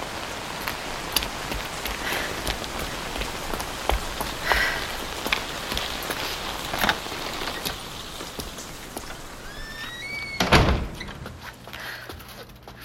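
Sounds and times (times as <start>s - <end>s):
steady dense rain pouring down: 0.0s - 12.1s.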